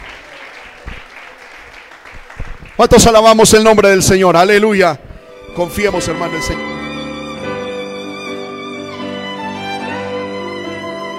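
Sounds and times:
audience at a church service applauding loudly: 0:00.0 - 0:03.7
speech: 0:02.8 - 0:05.0, 0:05.6 - 0:06.7.

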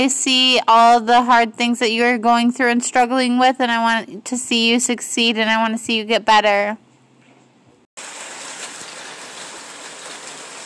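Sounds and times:
speech: 0:00.0 - 0:06.8
steady rain pouring down outdoors: 0:08.0 - 0:10.6.

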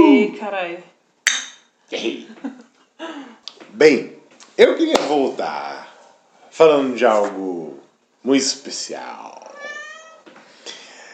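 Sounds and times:
speech: 0:00.2 - 0:01.0, 0:01.9 - 0:05.9, 0:06.6 - 0:09.5
glasses clinking in a toast: 0:01.3 - 0:01.7
laughter: 0:02.3 - 0:02.8.

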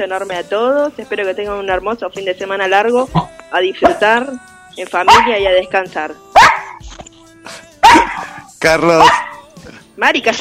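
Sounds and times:
speech: 0:00.0 - 0:06.2, 0:08.6 - 0:09.2, 0:10.0 - 0:10.4
dog barking: 0:05.0 - 0:05.6, 0:06.3 - 0:06.8, 0:07.8 - 0:09.6.

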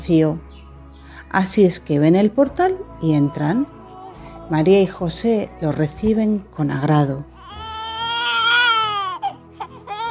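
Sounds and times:
speech: 0:00.1 - 0:00.5, 0:01.3 - 0:03.8, 0:04.5 - 0:07.4
hungry baby crying: 0:07.4 - 0:10.0.

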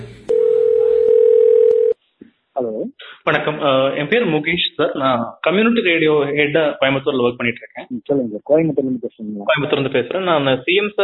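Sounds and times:
faint hiss: 0:00.0 - 0:11.0
telephone line tone while placing a call: 0:00.3 - 0:02.0
speech: 0:03.3 - 0:11.0.

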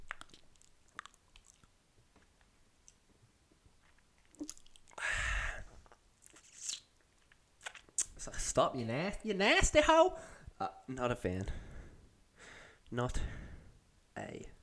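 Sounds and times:
person chewing and crunching crab: 0:00.0 - 0:03.1, 0:03.8 - 0:05.0, 0:05.8 - 0:08.2
speech: 0:08.5 - 0:11.6, 0:12.9 - 0:13.4.

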